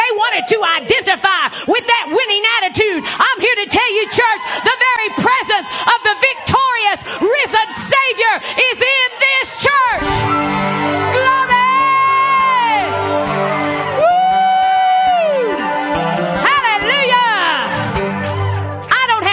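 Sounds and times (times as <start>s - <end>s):
church audience shouting and cheering during a sermon: 0.0s - 19.3s
speech: 0.4s - 2.0s.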